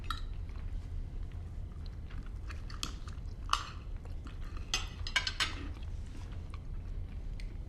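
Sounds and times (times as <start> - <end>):
low hum: 0.0 - 7.6
man chewing food with wet crunchy mouth sounds: 0.0 - 7.6
faint clinks of dishes and cutlery: 4.6 - 5.8.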